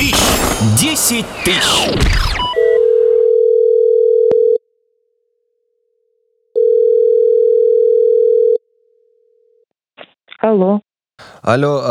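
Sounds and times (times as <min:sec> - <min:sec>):
speech: 0:00.6 - 0:02.3, 0:10.4 - 0:11.8
telephone ringback tone while dialing a number: 0:02.4 - 0:04.6, 0:06.6 - 0:08.6.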